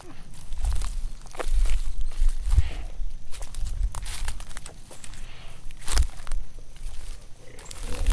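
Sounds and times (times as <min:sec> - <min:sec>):
heavy bear footsteps crunching through dry ground cover around a tent: 0:00.0 - 0:08.1
low rumbling growl of a large bear: 0:07.4 - 0:08.1.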